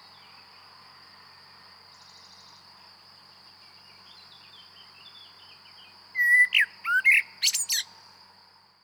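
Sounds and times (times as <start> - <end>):
Common blackbird Turdus merula song phrase: 6.2 - 7.9.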